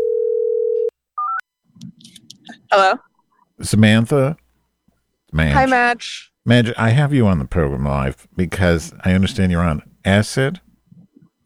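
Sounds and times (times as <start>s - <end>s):
telephone ringing tone: 0.0s - 1.4s
speech: 2.7s - 4.4s, 5.3s - 10.7s.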